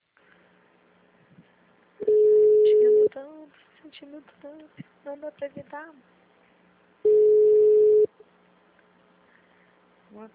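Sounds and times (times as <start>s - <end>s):
telephone busy signal: 2.0s - 3.1s, 7.1s - 8.1s
speech: 3.8s - 6.2s, 10.1s - 10.3s.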